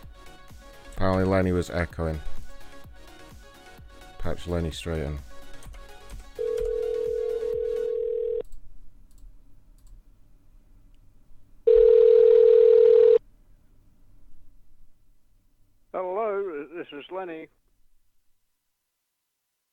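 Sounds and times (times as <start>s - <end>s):
speech: 1.0s - 2.3s, 4.2s - 5.3s, 17.1s - 17.6s
telephone dial tone during a call back: 6.4s - 8.4s, 11.7s - 13.2s.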